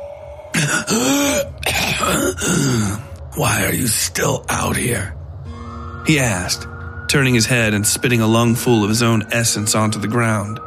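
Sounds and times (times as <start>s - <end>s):
faint hum: 0.0s - 10.6s
man clearing his throat loudly: 0.6s - 3.0s
speech: 0.6s - 5.2s, 6.0s - 10.6s.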